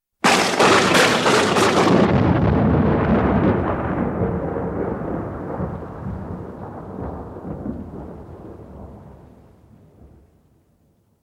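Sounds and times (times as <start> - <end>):
thunder crash: 0.2 - 9.2.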